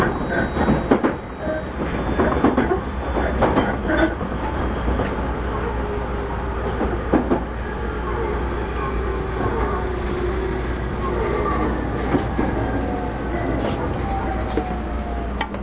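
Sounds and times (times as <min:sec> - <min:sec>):
thin drawn-out squeals from train wheels or motors: 0:00.0 - 0:05.7
low rumble inside a moving Tobu 30000 series commuter train: 0:00.0 - 0:15.6.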